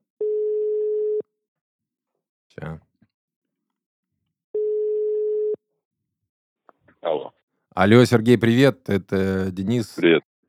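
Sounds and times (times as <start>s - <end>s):
telephone tone while a call is being placed: 0.2s - 1.2s, 4.6s - 5.6s
speech: 7.0s - 10.4s.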